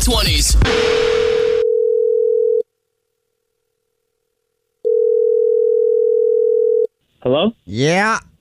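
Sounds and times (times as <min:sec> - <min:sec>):
speech: 0:00.0 - 0:01.1, 0:07.2 - 0:08.3
phone line ringback tone on an outgoing prank call: 0:00.8 - 0:02.6, 0:04.9 - 0:06.9.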